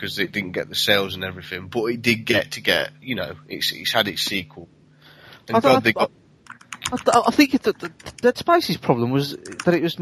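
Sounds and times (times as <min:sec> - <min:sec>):
speech: 0:00.0 - 0:04.8, 0:05.5 - 0:06.2, 0:06.9 - 0:10.0
typing on a computer keyboard: 0:06.4 - 0:08.3.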